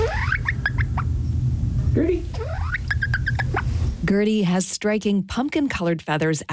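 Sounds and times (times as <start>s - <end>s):
small bantam hen peeping: 0.0s - 1.4s, 2.2s - 3.8s
low rumble: 0.0s - 4.6s
speech: 2.0s - 2.3s, 4.1s - 6.5s.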